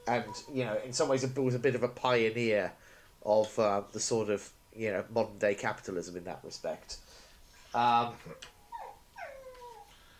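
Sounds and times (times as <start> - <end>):
speech: 0.1 - 7.0, 7.7 - 8.6
male dog whining: 7.6 - 10.0
male dog yelping: 8.6 - 9.9.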